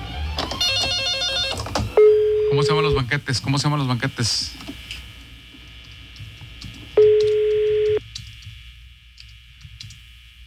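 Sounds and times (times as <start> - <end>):
low telephone dialing tone: 0.6 - 2.7, 7.0 - 8.0
speech: 2.6 - 4.7.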